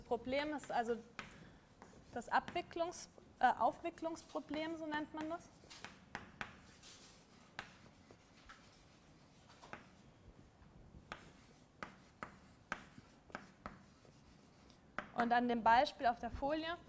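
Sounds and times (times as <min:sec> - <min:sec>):
speech: 0:00.1 - 0:01.2, 0:02.1 - 0:05.9, 0:15.2 - 0:16.8
pen scratching notes on paper during a lecture: 0:01.0 - 0:02.7, 0:04.3 - 0:10.0, 0:11.0 - 0:14.8.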